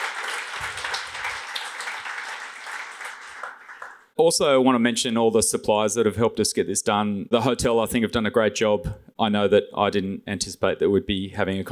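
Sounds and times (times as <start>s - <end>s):
crowd applauding: 0.0s - 4.1s
speech: 4.2s - 11.6s.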